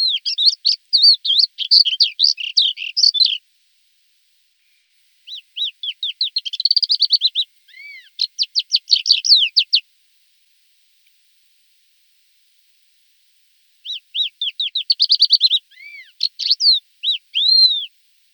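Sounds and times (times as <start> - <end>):
Thekla's lark song: 0.0 - 3.4, 5.2 - 9.8, 13.8 - 18.0.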